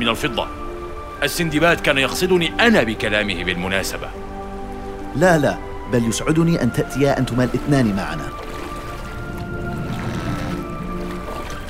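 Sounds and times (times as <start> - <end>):
speech: 0.0 - 0.6, 1.2 - 4.3, 5.2 - 8.4
small boat moving through water with sloshing and churning: 6.4 - 11.6.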